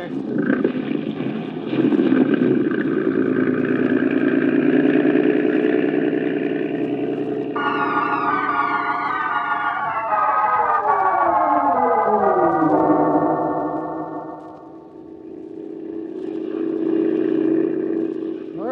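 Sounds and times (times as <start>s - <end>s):
motorboat engine droning on a moonlit river: 0.0s - 18.7s.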